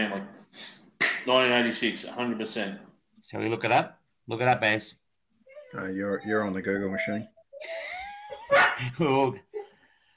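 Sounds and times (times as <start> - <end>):
speech: 0.0 - 5.0, 5.7 - 7.8, 8.8 - 9.5
dog yelping: 5.4 - 7.6, 8.3 - 8.8
dog whimpering with a high drawn-out whine: 5.4 - 8.8
dog barking short sharp barks: 8.5 - 8.8.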